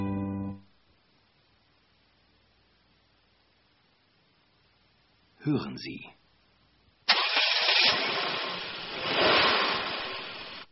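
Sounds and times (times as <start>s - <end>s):
speech: 5.4s - 6.2s
Porsche sports car engine starting: 7.1s - 10.7s.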